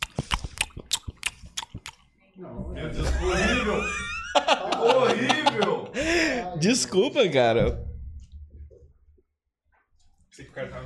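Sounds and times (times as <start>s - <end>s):
person chewing crunchy food while eating: 0.0s - 2.1s
laughter: 2.9s - 6.6s
speech: 6.6s - 7.9s.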